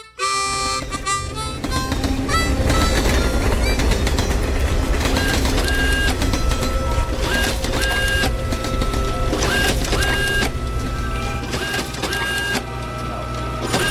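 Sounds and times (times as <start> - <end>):
high metallic squeals of train: 0.4 - 13.8
rhythmic clattering of train on tracks: 0.4 - 13.8
train picking up speed on tracks: 0.6 - 12.2.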